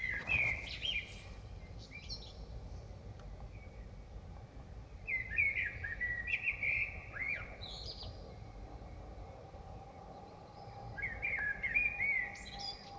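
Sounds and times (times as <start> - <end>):
common blackbird singing in Dresden: 0.0 - 2.4, 5.0 - 8.2, 10.1 - 12.9
steady low noise: 0.0 - 12.9.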